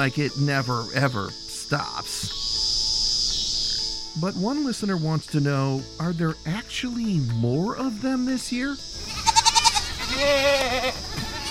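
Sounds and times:
speech: 0.0s - 2.5s, 4.2s - 9.1s, 10.1s - 11.2s
goat bleating: 9.0s - 11.4s.

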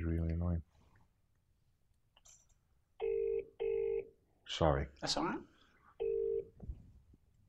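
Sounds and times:
telephone ringing with electronic tone bursts: 3.0s - 4.1s, 6.0s - 6.5s
speech: 4.6s - 5.5s.

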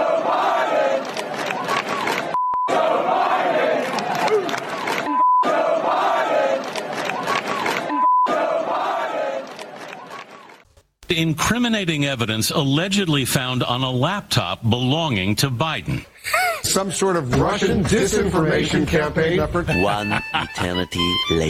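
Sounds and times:
large crowd chanting a political slogan: 0.0s - 10.6s, 17.3s - 19.7s
speech: 11.1s - 21.4s
laughter: 19.4s - 21.2s.

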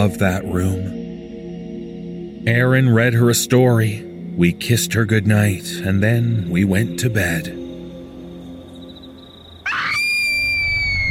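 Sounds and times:
speech: 0.0s - 1.0s, 2.4s - 7.6s
child screaming: 9.6s - 11.0s.

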